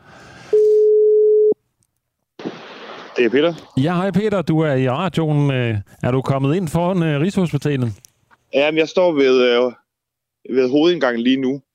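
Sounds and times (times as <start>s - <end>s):
outgoing phone call electronic ring tone: 0.5s - 1.6s
speech: 3.2s - 9.8s, 10.4s - 11.6s.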